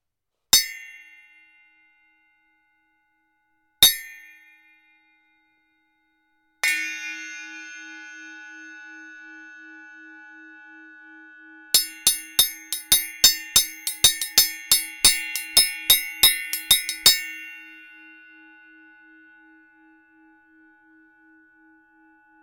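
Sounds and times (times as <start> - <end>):
Zildjian Zibell large 9.5 cymbal: 6.6 - 22.4.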